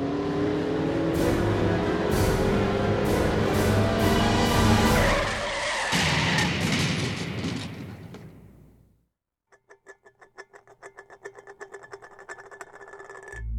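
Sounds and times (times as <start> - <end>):
car engine roaring and revving hard at an intersection: 0.0 - 5.8
car tires screeching: 0.0 - 8.3.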